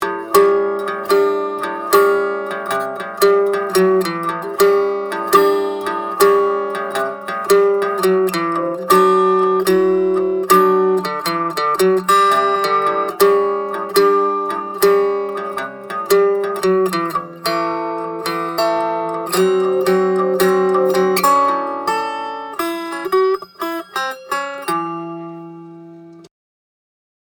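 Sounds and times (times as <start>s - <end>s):
guitar recorded at the soundhole: 0.0s - 26.3s.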